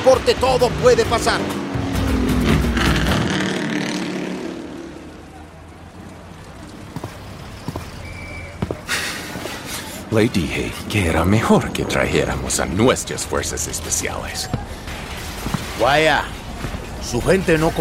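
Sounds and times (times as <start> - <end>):
racing cars accelerating through a curve: 0.0 - 14.6
speech: 0.1 - 1.6, 10.1 - 14.8, 15.8 - 16.4, 17.0 - 17.8.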